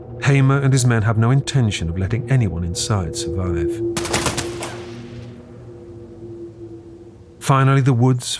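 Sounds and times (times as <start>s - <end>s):
speech: 0.2s - 4.4s, 7.5s - 8.3s
rapid thunderous burst of gunfire aimed at a car: 4.0s - 5.3s
rolling echo of gunfire into a steady low rumble: 4.0s - 7.3s.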